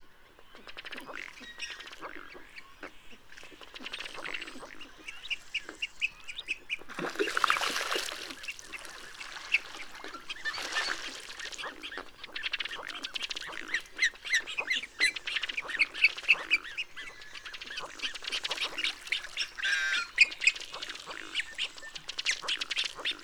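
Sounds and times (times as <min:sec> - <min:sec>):
male bubbling and ringing rush: 0:06.9 - 0:23.2
female calls: 0:11.9 - 0:22.7.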